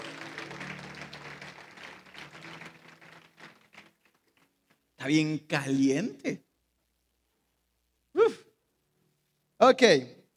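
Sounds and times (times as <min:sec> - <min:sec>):
crowd applauding: 0:00.0 - 0:04.8
speech: 0:05.0 - 0:06.5, 0:09.7 - 0:10.2.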